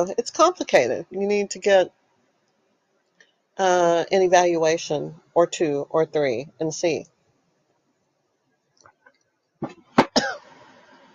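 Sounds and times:
speech: 0:00.0 - 0:02.0, 0:03.6 - 0:07.1
harsh raspy coughs: 0:10.0 - 0:10.6.

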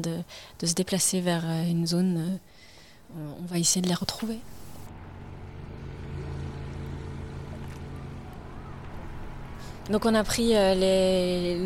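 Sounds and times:
speech: 0:00.0 - 0:04.6, 0:09.9 - 0:11.6
boat engine droning while heading out to sea: 0:04.0 - 0:11.6
water rushing past a boat: 0:04.4 - 0:09.8.

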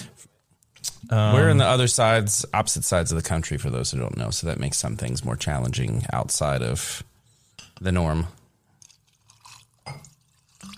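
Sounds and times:
speech: 0:01.0 - 0:07.1, 0:07.8 - 0:08.4
whiskey pouring into a glass: 0:08.8 - 0:10.7.

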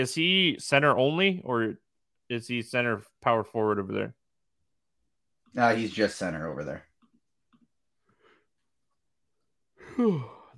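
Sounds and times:
speech: 0:00.0 - 0:04.2, 0:05.5 - 0:06.9, 0:10.0 - 0:10.4
person yawning: 0:09.8 - 0:10.5.

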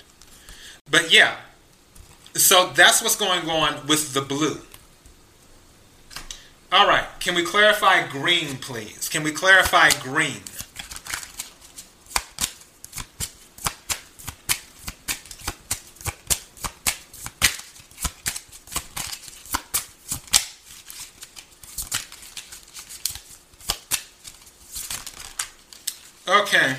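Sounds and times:
speech: 0:00.9 - 0:01.5, 0:02.4 - 0:04.7, 0:06.7 - 0:10.6
tarot cards being shuffled by hand: 0:09.6 - 0:26.2.

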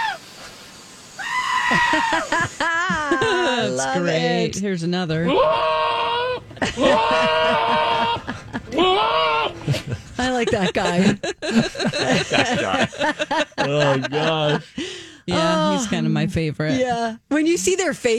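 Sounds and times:
speech: 0:01.7 - 0:02.9, 0:03.5 - 0:05.7, 0:06.7 - 0:09.1, 0:09.7 - 0:18.1
laughter: 0:01.7 - 0:04.2, 0:05.4 - 0:16.1
goat bleating: 0:05.2 - 0:09.8.

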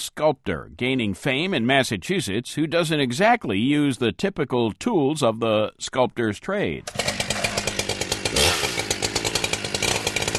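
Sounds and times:
speech: 0:00.0 - 0:07.3
chainsaw cutting wood: 0:06.8 - 0:10.3.

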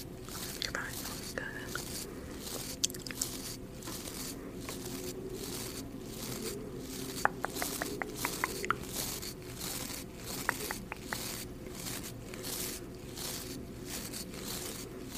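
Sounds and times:
low steady hum: 0:00.0 - 0:15.1
soft brushing strokes of makeup being applied: 0:00.0 - 0:15.1
small sharp clicks and taps: 0:07.2 - 0:08.8, 0:10.3 - 0:11.4.

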